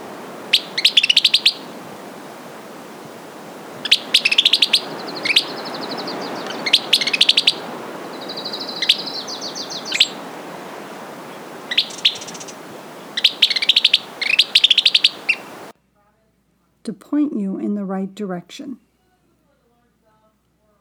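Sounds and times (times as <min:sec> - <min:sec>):
Western Kingbird squeaky sputtering calls: 0:00.0 - 0:15.7
soft hiss: 0:00.0 - 0:15.7
speech: 0:18.0 - 0:18.9.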